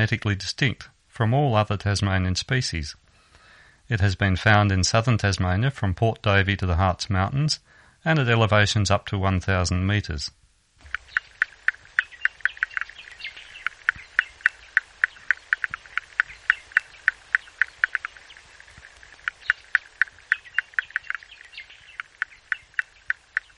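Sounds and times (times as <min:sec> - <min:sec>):
speech: 0:00.0 - 0:03.0, 0:03.9 - 0:10.4
male Tasmanian froglet calling away from the water in breeding season: 0:10.8 - 0:23.5.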